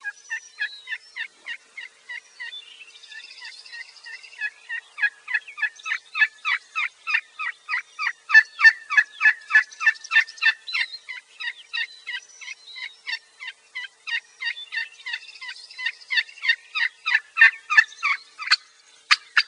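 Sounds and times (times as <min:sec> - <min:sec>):
turkey assembly call: 0:00.8 - 0:02.5, 0:03.4 - 0:19.4.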